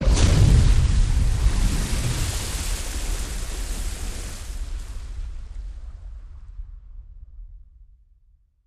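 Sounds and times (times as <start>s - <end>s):
water splash: 0.0s - 5.7s
explosion: 0.0s - 7.5s.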